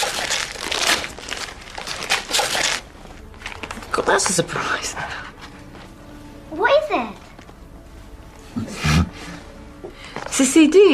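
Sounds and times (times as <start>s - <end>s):
gift wrapping paper being ripped open: 0.0s - 3.8s
speech: 4.0s - 5.3s, 6.5s - 7.2s, 10.4s - 10.9s.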